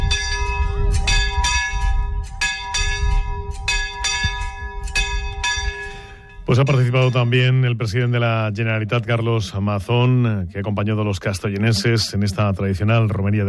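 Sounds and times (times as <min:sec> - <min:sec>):
church bell ringing at a hermitage: 0:00.0 - 0:07.6
speech: 0:06.5 - 0:13.4.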